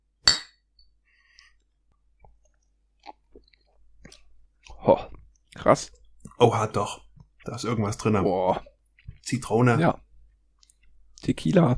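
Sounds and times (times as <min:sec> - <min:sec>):
glasses clinking in a toast: 0:00.3 - 0:00.6
speech: 0:05.6 - 0:08.7, 0:09.3 - 0:10.0, 0:11.3 - 0:11.7.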